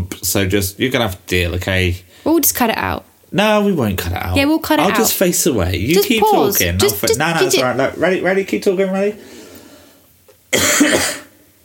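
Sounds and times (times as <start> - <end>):
speech: 0.2 - 9.4, 10.5 - 11.2
person coughing: 10.5 - 11.4.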